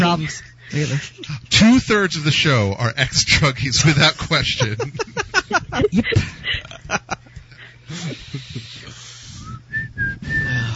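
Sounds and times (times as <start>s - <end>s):
speech: 0.1s - 7.2s, 7.9s - 9.0s
people chuckling: 3.8s - 9.0s
person whistling short clear notes: 9.3s - 10.7s.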